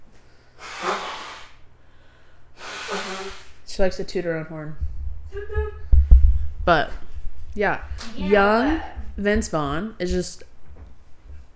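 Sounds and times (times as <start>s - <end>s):
forceful rough hissing nose blowing: 0.5s - 1.6s, 2.6s - 3.6s
speech: 3.8s - 5.6s, 6.6s - 7.0s, 7.6s - 10.5s.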